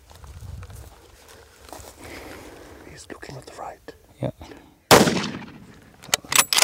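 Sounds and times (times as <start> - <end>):
loud gunshot fired while hunting an animal: 4.9 - 5.8.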